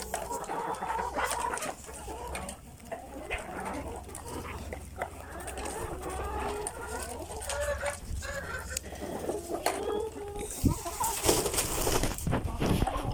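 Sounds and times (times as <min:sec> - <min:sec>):
hens clucking while pecking at feeders: 0:00.0 - 0:13.1
wings flapping: 0:11.0 - 0:12.8.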